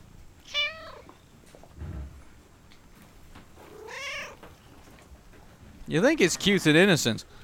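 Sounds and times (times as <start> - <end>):
cat meowing in a barn: 0.4 - 1.1, 3.6 - 4.5
speech: 5.9 - 7.4.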